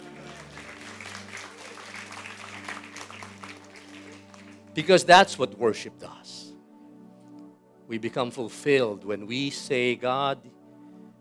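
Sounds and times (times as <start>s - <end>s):
audience applause: 0.0s - 4.8s
speech: 4.8s - 6.4s, 7.9s - 10.6s.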